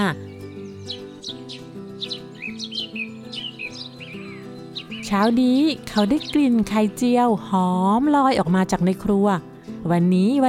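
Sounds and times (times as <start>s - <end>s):
birds chirping and calling beside a window: 0.0s - 7.3s
steady musical backdrop: 0.0s - 10.4s
speech: 0.1s - 0.3s, 5.1s - 10.4s.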